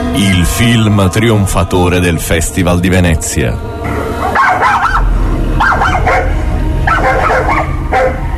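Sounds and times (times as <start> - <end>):
speech: 0.2 - 3.9
small dog barking in yappy bursts: 4.4 - 5.0, 5.6 - 8.2.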